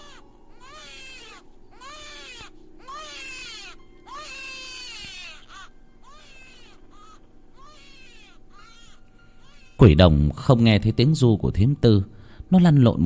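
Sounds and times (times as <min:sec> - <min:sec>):
newborn baby crying: 0:00.0 - 0:10.0
speech: 0:09.8 - 0:13.0.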